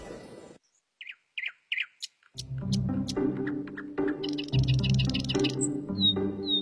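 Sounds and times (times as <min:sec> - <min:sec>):
magpie calling: 0:01.0 - 0:02.2, 0:03.4 - 0:06.6.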